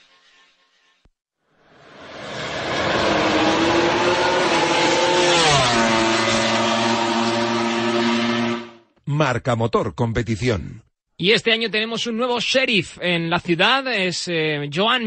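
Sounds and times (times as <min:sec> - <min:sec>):
MotoGP racing motorcycle engine revving hard: 0:01.7 - 0:08.9
speech: 0:09.4 - 0:15.0.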